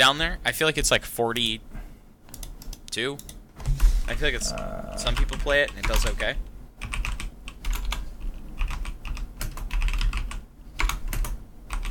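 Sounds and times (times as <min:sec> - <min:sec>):
speech: 0:00.0 - 0:01.8, 0:02.9 - 0:06.9
low hum: 0:00.0 - 0:11.8
rapid computer keyboard typing: 0:02.3 - 0:03.4, 0:04.5 - 0:06.2, 0:06.8 - 0:11.8.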